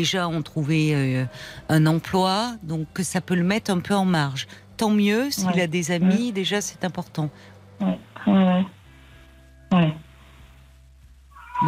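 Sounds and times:
speech: 0.0 - 8.7
low steady hum: 0.0 - 11.6
cat meowing, asking for food: 11.3 - 11.6.

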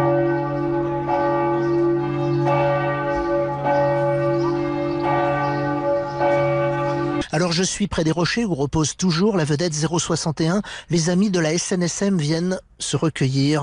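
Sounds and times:
church bells in Les Sables d'Olonne France pealing in tribute to sea rescuers: 0.0 - 8.3
speech: 7.4 - 13.6.

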